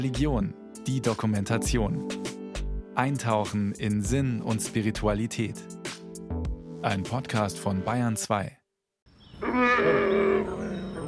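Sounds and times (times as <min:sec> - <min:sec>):
speech: 0:00.0 - 0:02.2, 0:03.0 - 0:05.8, 0:06.8 - 0:08.6, 0:09.5 - 0:10.1
bear roaring in a deep rasping bellow: 0:09.4 - 0:10.9.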